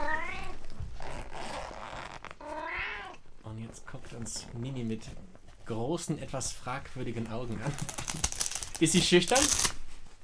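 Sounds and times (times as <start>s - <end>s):
cat meowing: 0.0s - 0.7s, 2.4s - 3.2s
cat carrier bag being carefully opened: 1.0s - 2.5s
speech: 3.7s - 9.8s.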